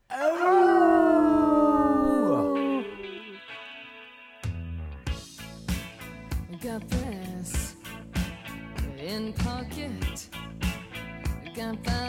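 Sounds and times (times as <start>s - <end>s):
long loud wailing howls: 0.1s - 3.4s
music: 2.7s - 12.0s.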